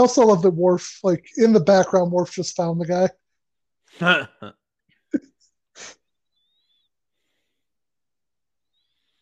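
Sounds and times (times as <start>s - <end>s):
speech: 0.0s - 3.2s, 3.9s - 6.0s
person burping after drinking ginger ale: 4.0s - 4.6s.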